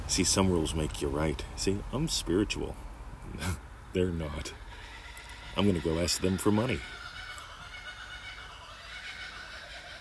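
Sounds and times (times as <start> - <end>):
speech: 0.1 - 4.6, 5.6 - 7.0
kookaburra laughing call: 4.5 - 9.9.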